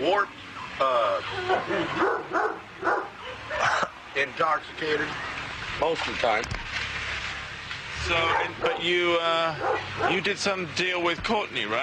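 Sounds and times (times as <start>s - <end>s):
speech: 0.0s - 3.0s, 4.2s - 6.8s, 8.0s - 11.8s
angry dog barking harshly: 1.5s - 3.8s, 8.2s - 10.3s.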